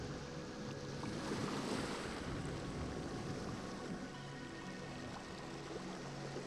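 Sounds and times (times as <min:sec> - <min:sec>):
ocean surf waves: 0:00.0 - 0:06.4
wind noise: 0:01.0 - 0:04.1.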